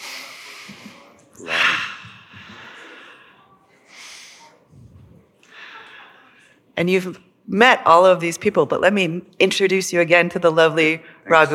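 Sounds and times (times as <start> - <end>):
deep breathing during a guided group breathing exercise: 0.0 - 6.6
speech: 6.8 - 11.5.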